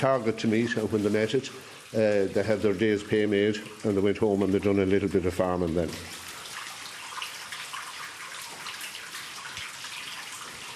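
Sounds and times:
speech: 0.0 - 6.2
water flowing in an old coal mine shaft: 0.0 - 10.7.

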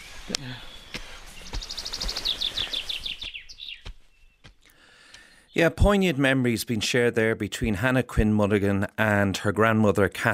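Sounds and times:
high whistled bird calls: 0.0 - 4.5
birds singing outdoors: 0.0 - 6.1
speech: 0.3 - 0.8, 5.6 - 10.3.

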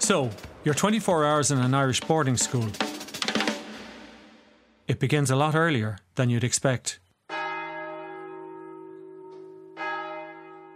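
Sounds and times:
speech: 0.1 - 3.0, 4.9 - 7.0
large monastery prayer bell tolling: 7.3 - 10.7.

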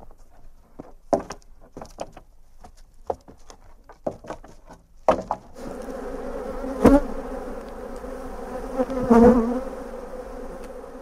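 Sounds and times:
taps and knocks: 1.1 - 5.5
many honeybees buzzing around hives: 5.6 - 10.9.

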